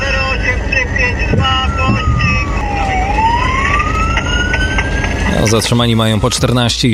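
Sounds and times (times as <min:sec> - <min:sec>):
police siren wailing during a pursuit of electric motorcycles in Rybnik: 0:00.0 - 0:06.9
traffic and engine rumble: 0:00.0 - 0:06.9
speech: 0:05.4 - 0:06.9.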